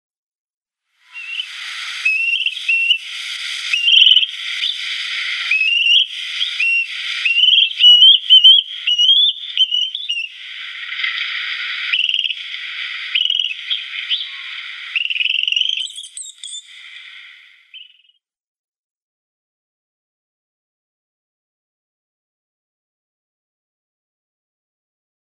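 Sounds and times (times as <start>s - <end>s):
young Common Crane calling: 1.1s - 18.0s.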